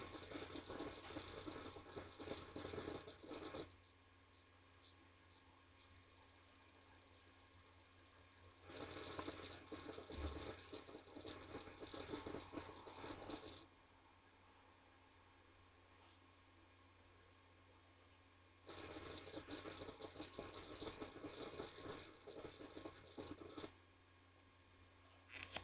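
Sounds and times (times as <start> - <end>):
Western Digital hard drive noise: 0.0 - 3.7, 8.6 - 13.7, 18.7 - 23.7.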